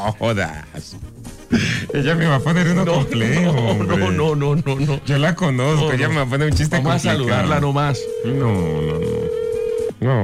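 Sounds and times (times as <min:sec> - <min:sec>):
speech: 0:00.0 - 0:09.4, 0:10.0 - 0:10.2
telephone ringing tone of an unanswered call: 0:01.9 - 0:04.3, 0:07.2 - 0:09.9.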